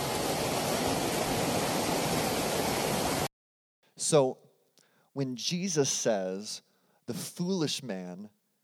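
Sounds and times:
roar of rushing floodwater from sudden rain: 0:00.0 - 0:03.3
speech: 0:04.0 - 0:04.4, 0:05.2 - 0:08.4.

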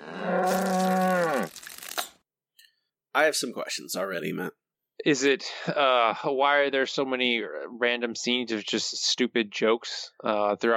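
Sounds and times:
cow mooing: 0:00.0 - 0:01.5
speech: 0:03.2 - 0:10.7.

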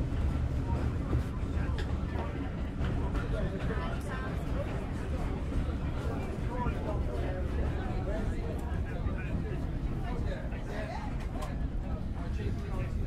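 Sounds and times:
many voices chattering at once: 0:00.0 - 0:13.0
moving train carriage rumbling: 0:00.0 - 0:13.0.

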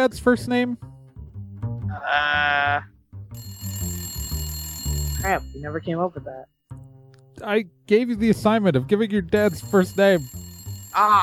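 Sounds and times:
speech: 0:00.0 - 0:00.9, 0:02.0 - 0:03.6, 0:05.2 - 0:06.6, 0:07.4 - 0:11.2
office telephone ringing with an electronic trill: 0:03.4 - 0:06.5, 0:09.4 - 0:11.2.

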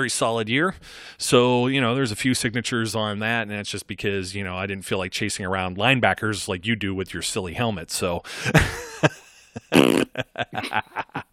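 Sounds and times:
speech: 0:00.0 - 0:11.2
laughter: 0:08.4 - 0:11.3
fart noise sound effect: 0:09.7 - 0:10.3.

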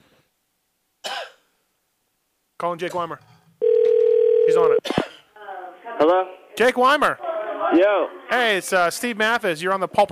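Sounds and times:
sharp cough: 0:01.0 - 0:01.5, 0:04.8 - 0:05.3
speech: 0:02.6 - 0:03.4, 0:04.5 - 0:05.0, 0:06.0 - 0:10.0.

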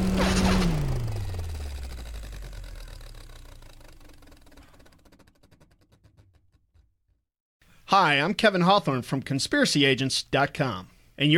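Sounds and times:
machine powering down sound effect with whirring hum: 0:00.0 - 0:06.3
speech: 0:07.9 - 0:11.3.

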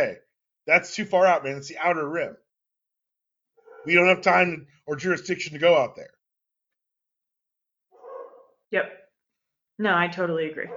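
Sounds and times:
speech: 0:00.0 - 0:02.4, 0:03.8 - 0:06.2, 0:08.7 - 0:09.0, 0:09.8 - 0:10.7
dog barking: 0:03.6 - 0:04.6, 0:08.0 - 0:08.6, 0:10.6 - 0:10.7.

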